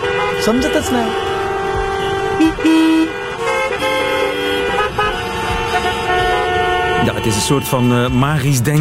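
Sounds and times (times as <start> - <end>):
car horns honking at a red light: 0.0 - 8.7
steady traffic noise: 0.0 - 8.7
speech: 0.4 - 1.3, 2.5 - 3.2, 7.0 - 8.7.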